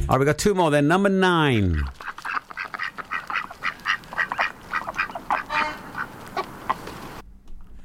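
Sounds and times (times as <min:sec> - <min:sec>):
speech: 0:00.1 - 0:02.1
ducks quacking: 0:01.5 - 0:07.2.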